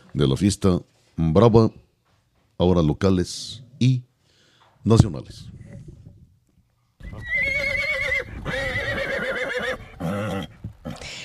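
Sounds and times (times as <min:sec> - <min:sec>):
speech: 0:00.2 - 0:01.8, 0:02.6 - 0:04.1, 0:04.8 - 0:05.6
horse neighing: 0:07.0 - 0:11.0.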